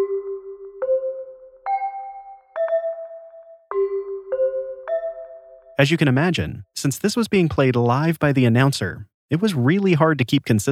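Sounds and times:
hand chimes playing a slow melodic sequence: 0:00.0 - 0:05.8
speech: 0:05.8 - 0:10.7.

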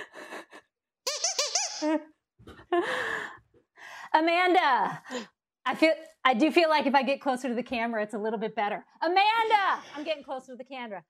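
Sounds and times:
squeaky donut toy squeaking: 0:01.0 - 0:02.0
speech: 0:01.8 - 0:03.2, 0:04.2 - 0:11.0.

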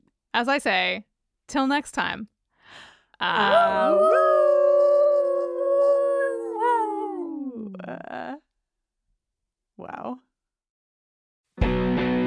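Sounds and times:
speech: 0:00.4 - 0:04.3, 0:07.9 - 0:08.4, 0:09.8 - 0:10.3
long loud howl: 0:03.4 - 0:08.0.

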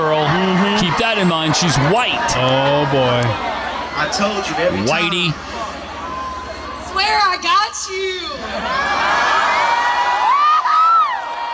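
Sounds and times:
loud crowd cheering and whooping: 0:00.0 - 0:11.5
speech: 0:01.1 - 0:05.6, 0:07.4 - 0:09.0.

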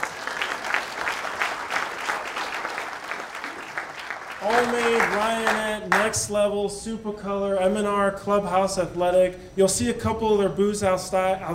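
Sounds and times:
crowd clapping: 0:00.0 - 0:06.2
speech: 0:04.4 - 0:11.5.

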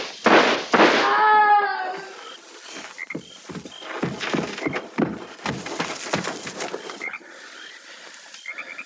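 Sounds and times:
gunshots in a frontier shootout: 0:00.0 - 0:01.2
person speaking: 0:01.0 - 0:02.4.

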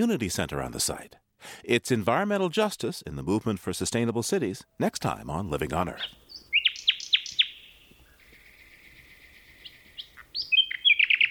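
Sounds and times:
speech: 0:00.0 - 0:06.2
nightingale singing in a forest: 0:04.7 - 0:11.2.

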